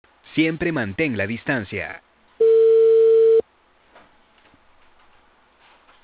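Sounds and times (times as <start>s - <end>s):
speech: 0.4s - 2.1s
telephone tone after a phone call is cut off: 2.4s - 3.4s.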